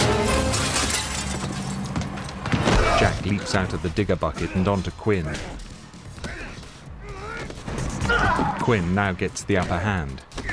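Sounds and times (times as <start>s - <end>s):
window glass shattering from inside a building: 0.0s - 2.0s
speech: 3.0s - 5.7s, 8.4s - 10.3s.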